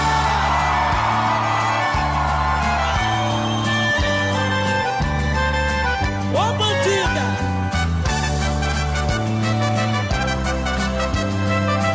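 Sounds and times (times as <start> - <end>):
crowd whooping and shouting: 0.0 - 4.9
loud live band music: 0.0 - 11.9.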